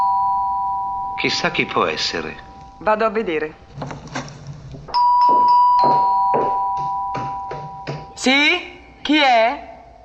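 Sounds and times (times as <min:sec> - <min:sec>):
two-tone doorbell chime at a front door: 0:00.0 - 0:01.7, 0:04.9 - 0:08.2
speech: 0:01.2 - 0:03.9, 0:08.2 - 0:09.7.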